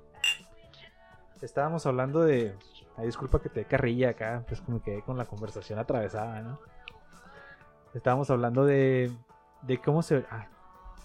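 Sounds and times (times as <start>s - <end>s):
beer bottles clinking in a toast: 0.2s - 0.5s
speech: 1.4s - 6.8s, 7.9s - 10.5s.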